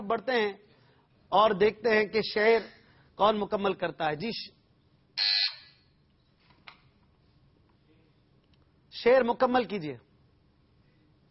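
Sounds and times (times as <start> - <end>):
speech: 0.1 - 0.7, 1.3 - 4.6, 5.2 - 5.4, 9.0 - 10.1
quiz show buzzer giving a loud harsh electronic buzz: 5.2 - 5.6.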